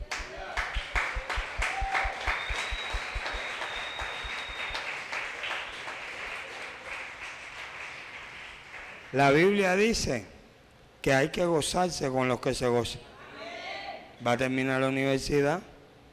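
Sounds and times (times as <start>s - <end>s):
applause in a church: 0.0s - 9.5s
speech: 9.1s - 10.3s, 11.0s - 13.1s, 14.2s - 15.7s.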